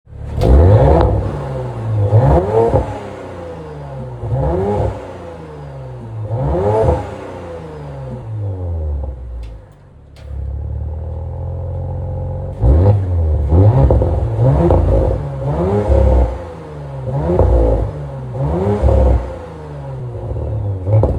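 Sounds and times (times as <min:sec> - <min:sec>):
Audi RS4 Edition 25 Years engine revving: 0:00.1 - 0:21.1.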